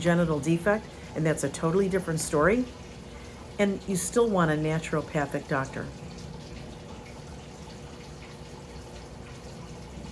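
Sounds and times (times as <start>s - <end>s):
speech: 0.0s - 2.8s, 3.6s - 6.1s
water trickling and splashing from small recirculating waterfalls, pump fountain and tower garden: 0.0s - 10.1s.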